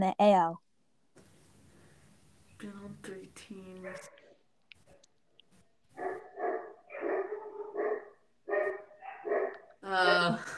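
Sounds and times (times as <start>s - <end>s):
speech: 0.0s - 0.6s, 2.6s - 4.2s, 9.9s - 10.5s
dogs barking loudly: 3.8s - 4.2s, 6.0s - 9.7s.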